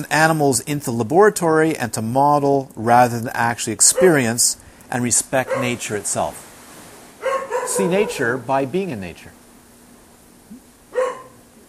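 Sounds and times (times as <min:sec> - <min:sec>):
speech: 0:00.0 - 0:06.5, 0:07.7 - 0:09.4
dog barking: 0:03.9 - 0:04.3, 0:05.4 - 0:05.9, 0:07.2 - 0:08.5, 0:10.9 - 0:11.4.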